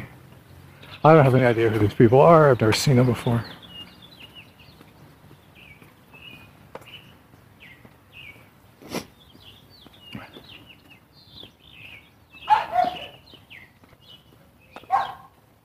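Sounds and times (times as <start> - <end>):
many birds chirping outdoors in the morning: 0.0 - 15.6
speech: 1.0 - 3.6
small dog yapping: 12.4 - 13.2, 14.8 - 15.3.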